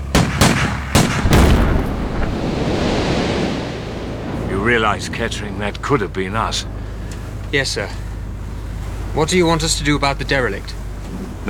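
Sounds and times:
sea mine blown up with rifle fire: 0.0 - 11.4
rifle cracks fired at a floating sea mine: 0.1 - 2.3
speech: 4.7 - 6.8, 7.5 - 8.0, 9.2 - 11.4.

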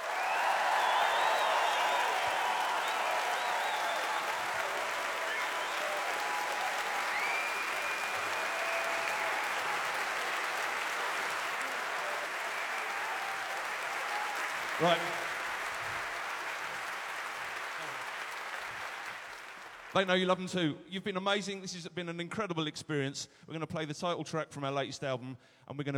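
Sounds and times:
faint cheers: 0.0 - 16.9
large audience applauding after a live performance: 0.0 - 20.1
speech: 14.8 - 15.2, 19.9 - 25.9.

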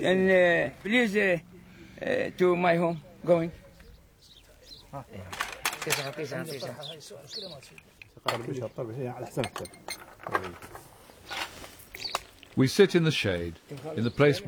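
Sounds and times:
speech: 0.0 - 3.6, 4.9 - 11.4, 12.6 - 14.4
bowls of biscuits and glasses of tea clinking as laid out on a farm: 9.3 - 12.6.

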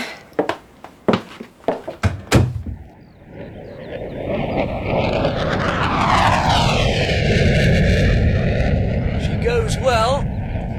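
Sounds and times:
sharp clicks and knocks: 1.8 - 2.9
jet aircraft engine spooling up with high whine and roar: 3.4 - 10.7.

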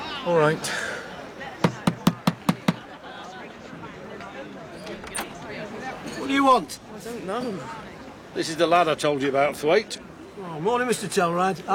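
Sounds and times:
low murmur of voices: 0.0 - 11.7
speech: 0.2 - 0.9, 6.3 - 11.7
quick knocks on a wooden door: 1.6 - 2.9.

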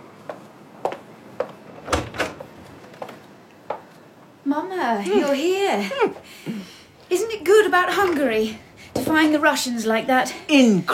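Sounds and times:
hospital door opening and closing in a corridor: 1.7 - 3.0
speech: 4.5 - 10.9.

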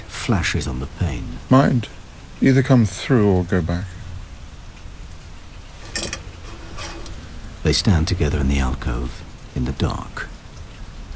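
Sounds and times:
steady rain hissing: 0.0 - 11.1
speech: 0.3 - 4.0, 7.6 - 10.3.

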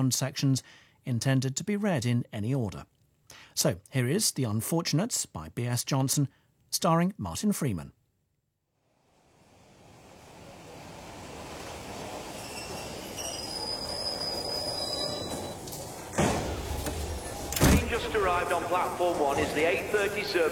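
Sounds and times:
speech: 0.0 - 8.0, 18.3 - 20.5
train rumbling into a station: 9.4 - 20.5
train wheels squealing in a thin high whine: 10.2 - 18.1
carriages settling with loud clanking thuds: 10.3 - 20.5
voices: 17.4 - 20.5.

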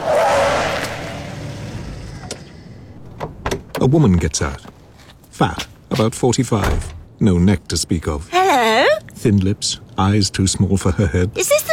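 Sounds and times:
car rushing past with engine noise: 0.0 - 3.4
speech: 3.8 - 4.8, 5.4 - 11.7.

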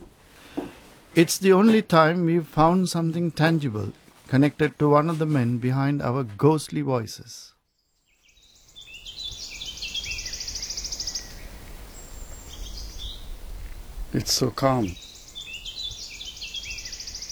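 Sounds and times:
speech: 1.2 - 7.5, 14.2 - 15.0
birds singing and chirping in calm countryside: 8.1 - 17.2.

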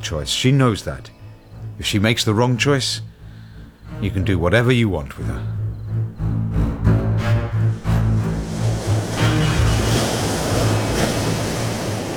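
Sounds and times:
speech: 0.0 - 1.2, 1.8 - 3.1, 4.0 - 5.6
deep droning hum: 5.4 - 11.8
ocean surf with crashing waves: 7.2 - 12.1.

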